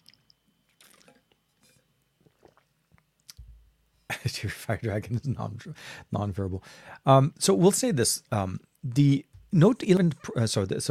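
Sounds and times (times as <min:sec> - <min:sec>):
person taking a quick sip of a drink: 0:00.0 - 0:03.4
swallow: 0:02.2 - 0:02.7
speech: 0:04.1 - 0:10.8.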